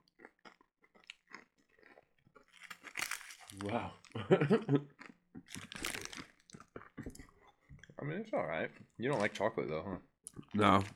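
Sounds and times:
crunchy chip being chewed: 0.0 - 3.8, 4.9 - 7.3
speech: 3.6 - 5.1, 8.0 - 10.9.

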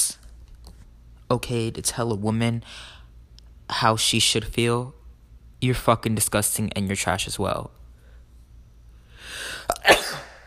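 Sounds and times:
speech: 1.3 - 3.0, 3.7 - 5.0, 5.6 - 7.8
person sneezing: 9.3 - 10.4.

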